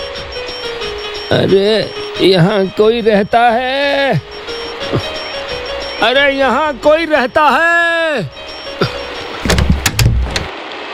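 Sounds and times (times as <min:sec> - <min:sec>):
speech: 0:01.3 - 0:04.3, 0:04.9 - 0:05.1, 0:06.0 - 0:08.4
door opening: 0:09.3 - 0:10.5.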